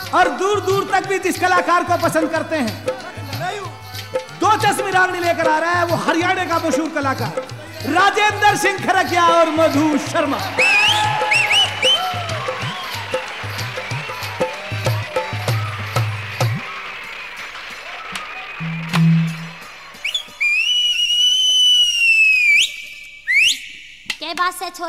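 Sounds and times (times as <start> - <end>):
noisy crowd: 0.0 - 24.0
speech: 0.1 - 3.8, 4.4 - 11.4
person whistling one long loud steady note: 10.6 - 13.1, 18.6 - 24.1.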